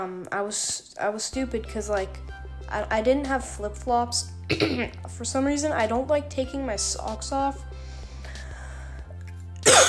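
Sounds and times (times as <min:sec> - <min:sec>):
speech: 0:00.0 - 0:07.9
person coughing: 0:04.5 - 0:05.0, 0:09.6 - 0:09.8.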